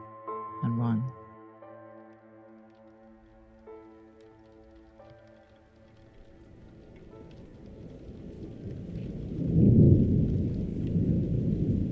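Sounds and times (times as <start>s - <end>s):
speech: 0.6s - 1.2s
steady rain: 2.6s - 11.9s
low rumbling thunder: 6.3s - 11.9s.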